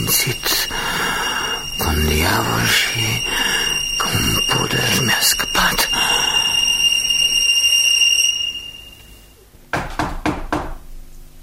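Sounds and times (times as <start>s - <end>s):
high sustained ringing tone: 0.0s - 9.4s
quick sharp knocks on a door: 9.7s - 10.9s.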